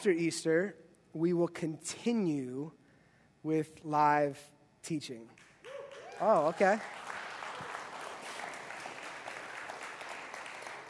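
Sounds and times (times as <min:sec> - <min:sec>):
speech: 0:00.0 - 0:02.8, 0:03.4 - 0:05.5, 0:06.2 - 0:07.1
partial audience clapping in a room: 0:05.6 - 0:10.8.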